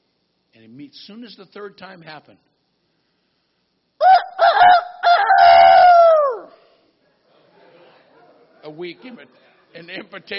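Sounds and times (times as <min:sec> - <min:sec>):
speech: 0:00.6 - 0:02.5, 0:08.7 - 0:10.3
person imitating a rooster crowing while retelling a Bible story: 0:04.0 - 0:06.6.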